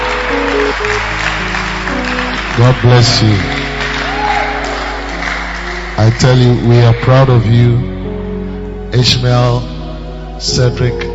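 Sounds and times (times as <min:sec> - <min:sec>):
congregation clapping and cheering: 0:00.0 - 0:07.5
sustained organ or keyboard chords: 0:00.0 - 0:11.1
speech: 0:02.6 - 0:03.6, 0:06.0 - 0:08.0, 0:08.9 - 0:09.7, 0:10.4 - 0:11.1
congregation shouting: 0:04.0 - 0:06.0.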